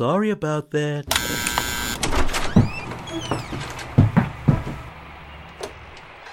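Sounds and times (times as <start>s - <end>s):
speech: 0.0s - 2.1s
thin squeaky door creaks: 1.1s - 4.9s, 5.6s - 6.3s
door opening: 1.1s - 6.3s.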